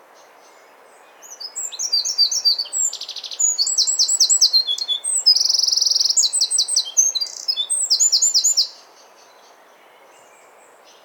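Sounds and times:
Eurasian wren Troglodytes troglodytes singing high ringing notes and trills: 0:01.2 - 0:08.8.

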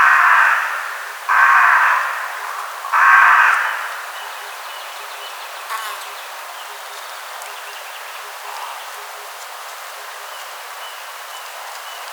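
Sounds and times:
Corvus corone carrion crow cawing harshly: 0:00.0 - 0:04.2.

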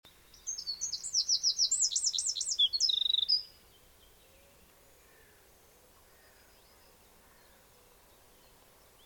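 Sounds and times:
Eurasian wren singing: 0:00.3 - 0:03.5.

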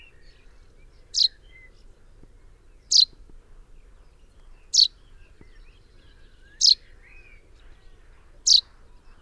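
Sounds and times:
soft chirps from other birds: 0:06.4 - 0:06.8
common chaffinch calling with crisp high single notes: 0:06.6 - 0:06.8.

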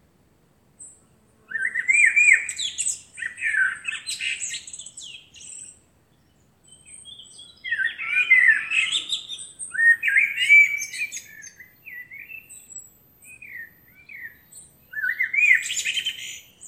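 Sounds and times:
Eurasian blackbird (Turdus merula) singing mellow warbling phrases: 0:00.8 - 0:16.6.

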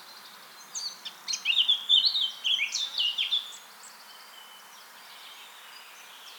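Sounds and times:
Eurasian blackcap song: 0:00.0 - 0:03.6.

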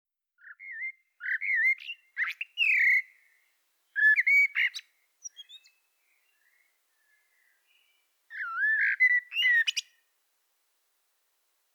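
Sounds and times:
common blackbird Turdus merula singing fluty warbled phrases: 0:00.4 - 0:03.2, 0:03.9 - 0:10.0.

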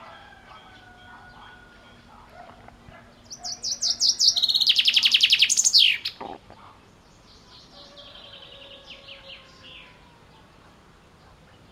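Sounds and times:
Common chaffinch Fringilla coelebs song: 0:00.0 - 0:11.7.

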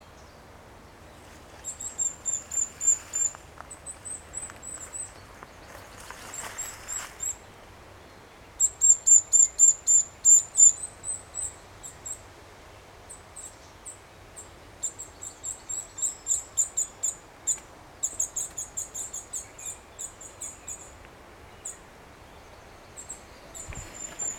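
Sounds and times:
steady background hiss: 0:00.0 - 0:24.3
Eurasian nuthatch giving high-pitched calls: 0:01.6 - 0:05.2, 0:08.6 - 0:12.2, 0:14.8 - 0:21.0, 0:22.4 - 0:24.3.

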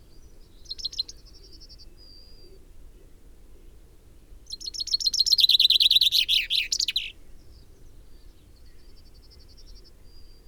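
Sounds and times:
common chaffinch Fringilla coelebs song: 0:04.5 - 0:07.2.

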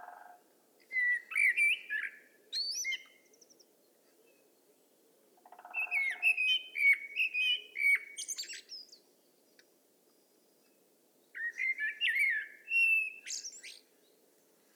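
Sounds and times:
common blackbird Turdus merula singing: 0:00.9 - 0:04.4, 0:05.4 - 0:09.5, 0:11.3 - 0:14.2.

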